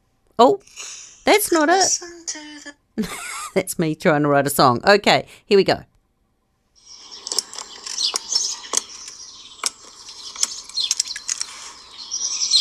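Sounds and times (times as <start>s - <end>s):
speech: 0.4s - 5.9s
birds chirping and singing: 6.8s - 12.5s
sharp irregular clicks: 7.0s - 11.8s.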